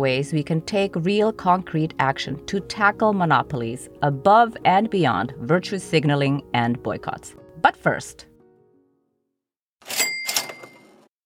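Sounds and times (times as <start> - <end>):
speech: 0.0 - 8.3
cash-register cha-ching of a sale notification with metallic ding and rattling jingle: 9.8 - 11.1.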